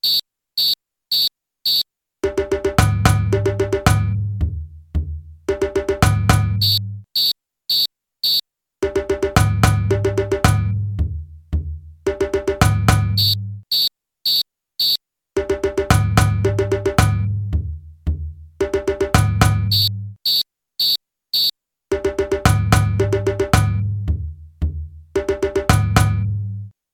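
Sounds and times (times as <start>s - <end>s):
djembe call and response: 2.2s - 6.8s, 8.8s - 13.3s, 15.4s - 19.9s, 21.9s - 26.2s.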